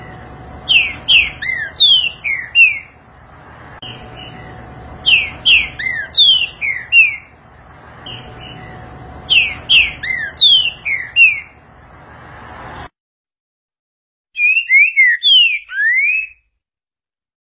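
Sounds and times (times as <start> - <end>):
low steady background hum: 0.0 - 12.9
green-winged saltator singing slurred falling whistles: 0.7 - 3.0, 5.0 - 7.3, 9.3 - 11.6, 14.4 - 16.4.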